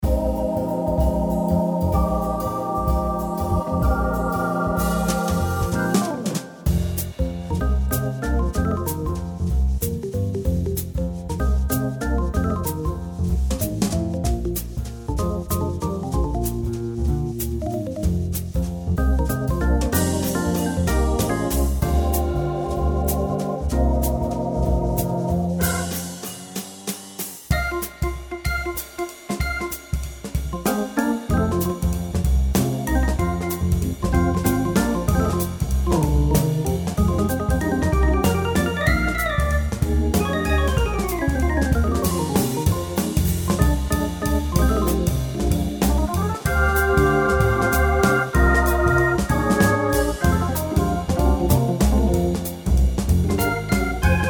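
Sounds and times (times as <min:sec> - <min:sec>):
jazz waltz: 0:00.0 - 0:54.2.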